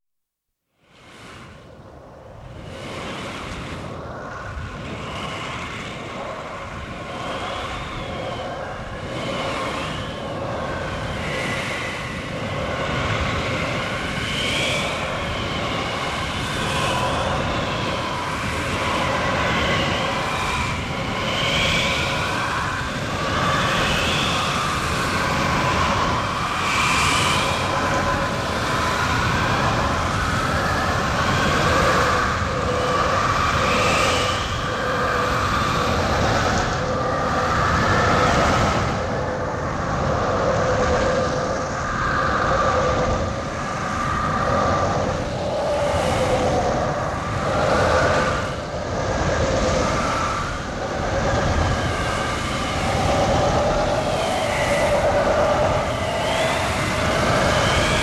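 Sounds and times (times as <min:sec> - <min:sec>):
tornado wind: 0:00.8 - 0:58.0.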